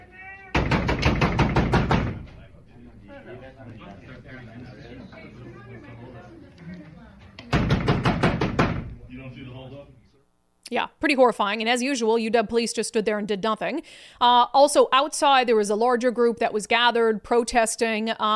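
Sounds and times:
people banging on closed doors: 0:00.5 - 0:02.5, 0:07.4 - 0:09.0
crowd murmuring: 0:02.3 - 0:07.5
speech: 0:10.7 - 0:18.3.

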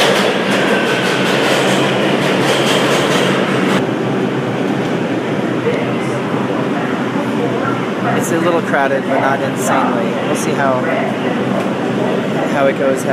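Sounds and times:
subway train arriving at station, wheels clacking over the rails: 0:00.0 - 0:13.1
speech: 0:08.3 - 0:13.1.

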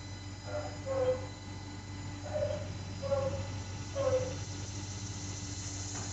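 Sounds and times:
constant low hum and engine-like drone: 0:00.0 - 0:06.1
elderly dog barking: 0:00.5 - 0:01.3, 0:02.2 - 0:04.4.

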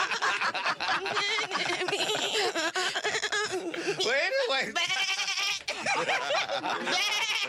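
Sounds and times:
laughter: 0:00.0 - 0:07.4
goat bleating: 0:04.7 - 0:05.7, 0:06.8 - 0:07.4.

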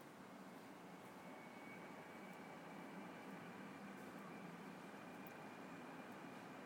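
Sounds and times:
distant tram rumble heard from a garden: 0:00.2 - 0:06.6.

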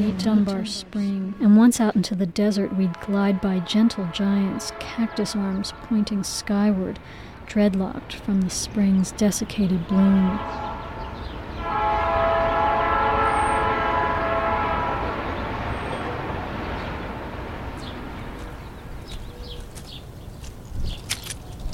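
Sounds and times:
speech: 0:00.0 - 0:10.7
passing train rumbling on tracks: 0:00.0 - 0:21.7
train horn blaring: 0:02.5 - 0:06.8, 0:09.9 - 0:16.4
birds chirping: 0:03.5 - 0:21.7.

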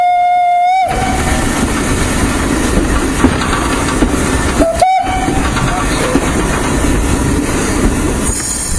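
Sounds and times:
steam locomotive whistle: 0:00.0 - 0:01.4, 0:04.6 - 0:05.5
running steam train rumbling and clattering: 0:00.0 - 0:08.7.

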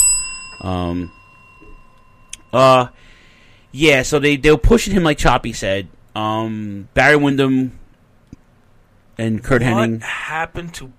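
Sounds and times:
bright bell ringing: 0:00.0 - 0:03.6
speech: 0:00.6 - 0:01.2, 0:02.5 - 0:03.1, 0:03.7 - 0:07.8, 0:09.2 - 0:10.9.

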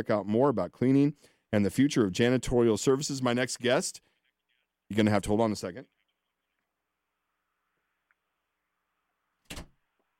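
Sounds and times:
speech: 0:00.0 - 0:04.1, 0:04.9 - 0:05.9
door pushed shut with a solid thud: 0:09.5 - 0:09.8.

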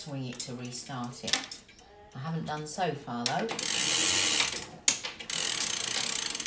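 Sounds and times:
speech: 0:00.0 - 0:01.6, 0:02.2 - 0:03.9
chain of a weight-driven pendulum clock being pulled: 0:03.5 - 0:06.4
ratchet clicking as pendulum clock chain is pulled to wind it: 0:03.5 - 0:06.4.

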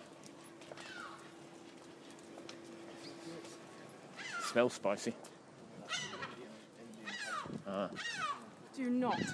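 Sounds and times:
seagull calling outdoors: 0:04.2 - 0:04.6, 0:05.9 - 0:06.4, 0:07.0 - 0:09.3
speech: 0:04.5 - 0:05.3, 0:07.7 - 0:09.3.

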